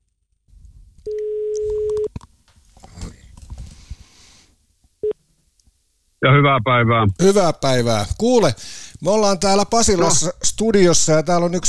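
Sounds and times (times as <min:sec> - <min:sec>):
faint room noise: 0:00.0 - 0:11.6
telephone ringback tone on a direct line from a radio studio: 0:01.1 - 0:02.1
speech: 0:06.2 - 0:11.6.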